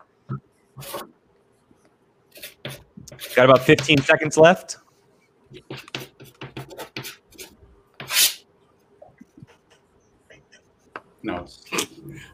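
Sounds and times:
dry erase marker writing on a whiteboard: 0:00.8 - 0:01.1, 0:02.3 - 0:04.2, 0:05.5 - 0:08.4, 0:09.2 - 0:10.9
speech: 0:03.4 - 0:04.8.

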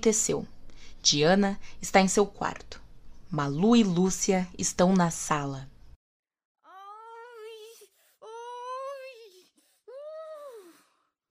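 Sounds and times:
speech: 0:00.0 - 0:05.7
woman moaning wails at night: 0:06.7 - 0:10.9.

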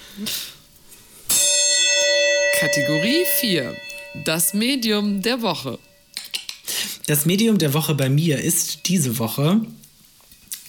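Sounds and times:
speech: 0:00.2 - 0:00.5, 0:02.6 - 0:05.9, 0:07.1 - 0:09.8
metallic gong strike: 0:01.3 - 0:06.1.

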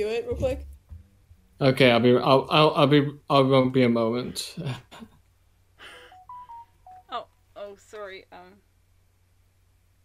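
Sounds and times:
speech: 0:00.0 - 0:00.7, 0:01.6 - 0:05.1, 0:07.1 - 0:08.7
phone notification chime: 0:06.2 - 0:07.2.

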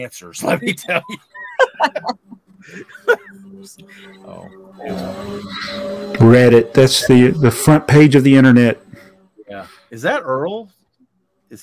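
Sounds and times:
speech: 0:00.0 - 0:08.8, 0:09.6 - 0:10.8
laughter: 0:00.4 - 0:08.5
vacuum cleaner droning with a whiny motor tone: 0:02.6 - 0:10.4.

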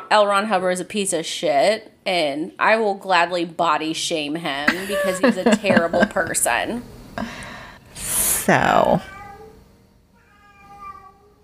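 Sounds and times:
speech: 0:00.1 - 0:07.4, 0:08.5 - 0:09.1
laughter: 0:04.7 - 0:06.6
cat meowing: 0:09.0 - 0:09.6, 0:10.2 - 0:11.4.

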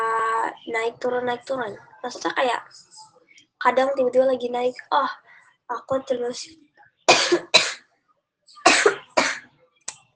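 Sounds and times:
speech: 0:00.4 - 0:07.5
person coughing: 0:07.1 - 0:07.8, 0:08.6 - 0:09.4.

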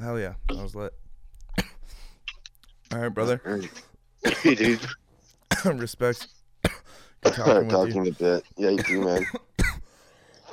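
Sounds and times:
speech: 0:00.0 - 0:01.0, 0:02.9 - 0:09.5
single short cough: 0:03.6 - 0:05.8, 0:06.7 - 0:07.6, 0:08.8 - 0:09.9.

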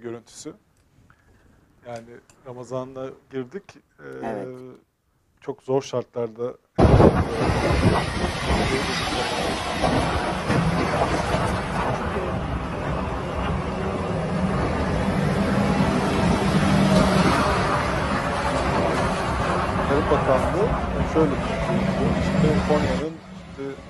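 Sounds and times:
speech: 0:00.1 - 0:00.7, 0:01.8 - 0:10.2, 0:20.0 - 0:23.8
convoy of trucks driving on road: 0:07.3 - 0:23.8.

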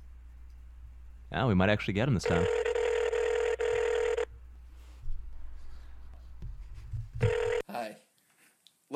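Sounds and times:
speech: 0:01.3 - 0:02.7
phone ringing tone on the line: 0:02.2 - 0:04.3, 0:07.2 - 0:07.6
faint low rustles and thumps: 0:04.7 - 0:07.4.

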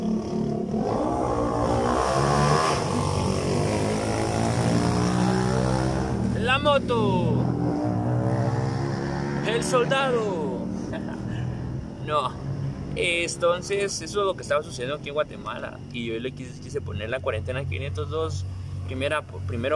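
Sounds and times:
motorcycle passing by outside: 0:00.0 - 0:13.8
speech: 0:06.6 - 0:07.4, 0:09.6 - 0:10.4, 0:12.1 - 0:12.4, 0:13.0 - 0:19.7
laughter: 0:10.6 - 0:11.5.

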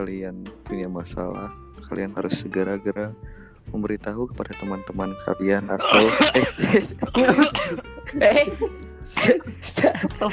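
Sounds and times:
speech: 0:00.0 - 0:10.3
laughter: 0:05.7 - 0:10.3
person coughing: 0:05.8 - 0:08.4.

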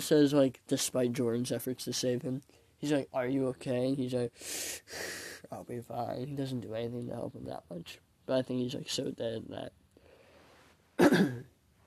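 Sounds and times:
speech: 0:00.0 - 0:09.8, 0:11.0 - 0:11.5
faint noise: 0:00.0 - 0:11.8
person clearing throat: 0:11.0 - 0:11.5.

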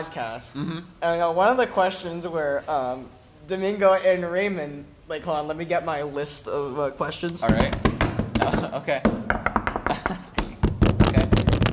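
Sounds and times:
speech: 0:00.0 - 0:07.8, 0:08.4 - 0:09.5
person banging on a table: 0:07.5 - 0:11.4.

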